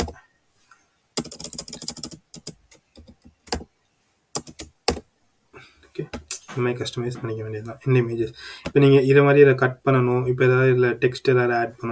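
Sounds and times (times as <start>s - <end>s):
typing on a computer keyboard: 1.2s - 3.7s, 4.4s - 5.0s
speech: 6.6s - 11.9s.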